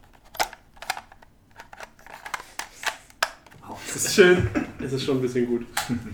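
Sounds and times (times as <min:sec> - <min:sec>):
game cartridge pushed into and pulled out of a console: 0:00.0 - 0:03.6
speech: 0:04.0 - 0:06.1.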